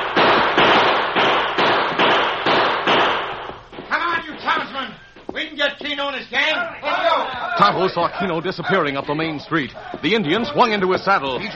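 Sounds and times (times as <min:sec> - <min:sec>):
gunshots in a western radio drama: 0:00.0 - 0:04.9
laughter: 0:06.5 - 0:11.5
speech: 0:07.6 - 0:11.5.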